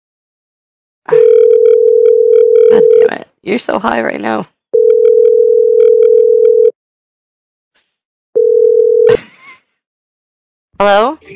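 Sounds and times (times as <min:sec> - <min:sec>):
steady electronic phone call tone before voicemail: 0:01.1 - 0:03.1, 0:04.8 - 0:06.7, 0:08.4 - 0:09.1
speech: 0:03.4 - 0:04.6, 0:10.8 - 0:11.3.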